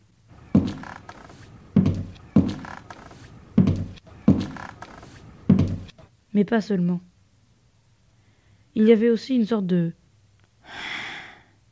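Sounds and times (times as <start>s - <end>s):
heavy adult footsteps on a wooden parquet floor: 0.3s - 6.1s
speech: 6.4s - 7.1s, 8.8s - 10.0s.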